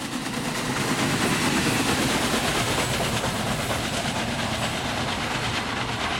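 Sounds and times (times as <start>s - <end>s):
rhythmic clatter of steam locomotive wheels: 0.0s - 6.1s
steam locomotive rolling along railroad tracks: 0.0s - 6.1s.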